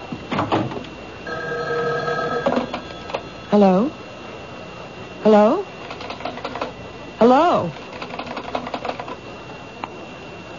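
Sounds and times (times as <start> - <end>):
telephone ringing with electronic trill: 1.2 - 3.4
speech: 3.5 - 4.0, 5.2 - 5.7, 7.2 - 7.8.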